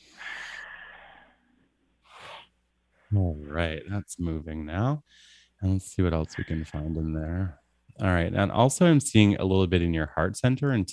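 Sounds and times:
person breathing in deeply: 0.0s - 1.4s
speech: 3.1s - 10.9s.

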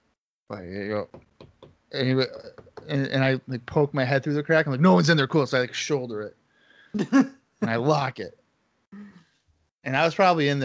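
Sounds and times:
speech: 0.5s - 1.3s, 1.9s - 9.0s, 9.8s - 10.6s
light knocks on a shut stall door: 1.1s - 1.9s.

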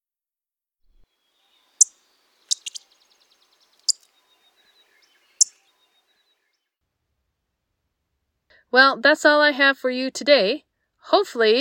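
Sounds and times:
orange-crowned warbler sharp chip calls: 1.0s - 6.4s
speech: 8.7s - 11.5s.

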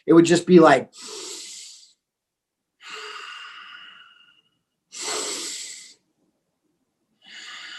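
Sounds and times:
speech: 0.0s - 1.2s
slow controlled breathing: 0.9s - 2.1s, 2.8s - 6.2s, 7.2s - 7.7s
long slow exhale: 1.0s - 2.0s, 2.8s - 6.0s, 7.2s - 7.7s.

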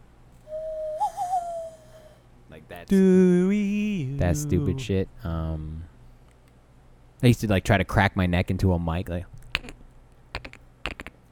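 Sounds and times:
owl-like bird call blown through cupped hands: 0.5s - 2.1s
speech: 2.9s - 3.6s, 4.2s - 5.9s, 7.2s - 9.4s.

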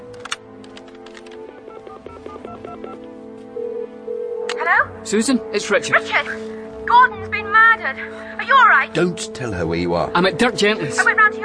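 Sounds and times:
touch-tone beeps of a phone number keyed in on a borrowed phone: 1.5s - 3.0s
speech: 5.0s - 11.4s.

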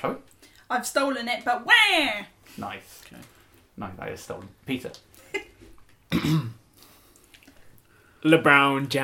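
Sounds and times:
speech: 0.0s - 5.4s, 6.1s - 6.6s, 8.2s - 9.0s
throat clearing: 6.1s - 6.6s.

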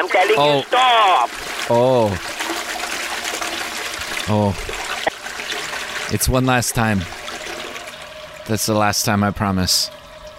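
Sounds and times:
speech: 0.0s - 2.4s, 4.3s - 4.8s, 6.1s - 7.2s, 8.5s - 10.0s
toilet flushing: 0.0s - 10.3s.

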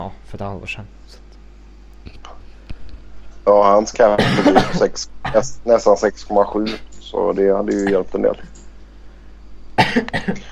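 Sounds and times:
speech: 0.0s - 1.3s, 3.4s - 8.6s, 10.0s - 10.4s
harsh raspy coughing fit: 4.0s - 5.6s, 9.8s - 10.4s.

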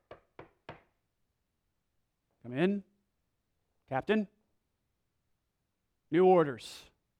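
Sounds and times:
firm knocks on a door: 0.0s - 1.0s
speech: 2.5s - 2.9s, 3.9s - 4.4s, 6.1s - 6.9s.

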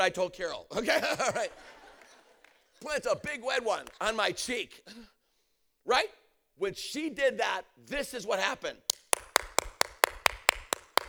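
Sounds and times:
speech: 0.0s - 1.8s, 2.8s - 5.2s, 5.8s - 9.0s
laughter: 0.7s - 3.7s
hand claps: 1.9s - 4.2s, 8.9s - 11.0s.

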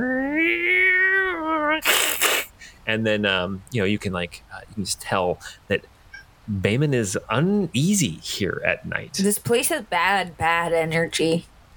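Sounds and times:
cat yowling in a night fight: 0.0s - 1.9s
cats hissing while fighting at night: 0.0s - 2.6s
speech: 2.9s - 5.9s, 6.5s - 11.5s.

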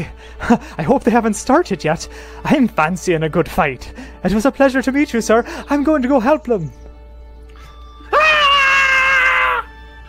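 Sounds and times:
speech: 0.0s - 6.8s
human voice imitating a shrieker mushroom creature's scream: 8.1s - 9.7s.

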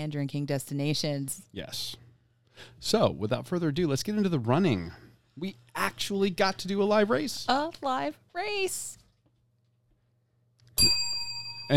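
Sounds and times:
speech: 0.0s - 2.0s, 2.6s - 9.0s
bell struck sharply with bright metallic tone: 10.8s - 11.7s.

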